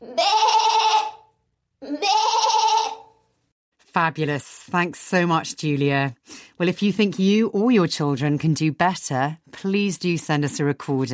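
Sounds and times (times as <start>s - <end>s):
person imitating goat bleats while singing a traditional song: 0.0s - 3.1s
speech: 4.0s - 11.1s.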